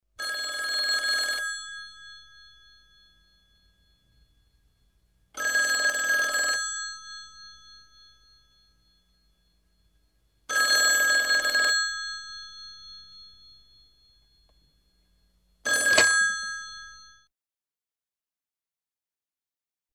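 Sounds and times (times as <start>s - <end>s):
old telephone ringing: 0.2s - 4.3s, 5.4s - 9.9s, 10.5s - 14.7s, 15.6s - 17.2s.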